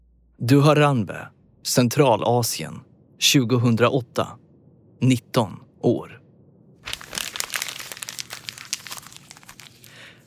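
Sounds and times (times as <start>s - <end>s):
speech: 0.4s - 4.4s, 5.0s - 6.2s
paper note being crumpled: 6.8s - 10.2s.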